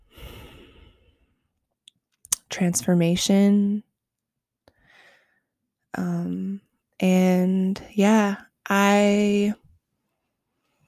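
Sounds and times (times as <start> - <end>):
slow deep breath released in a long airy exhale: 0.0 - 1.3
speech: 2.6 - 3.9, 6.0 - 9.6.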